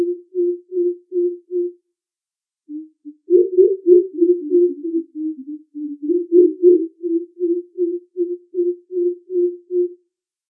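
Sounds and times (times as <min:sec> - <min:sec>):
greater coucal giving deep hollow hoots: 0:00.0 - 0:01.8, 0:02.7 - 0:10.0.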